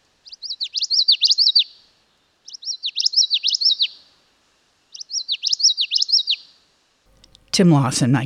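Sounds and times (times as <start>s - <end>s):
common yellowthroat singing: 0.2s - 1.8s, 2.4s - 4.1s, 4.9s - 7.5s
speech: 7.6s - 8.2s.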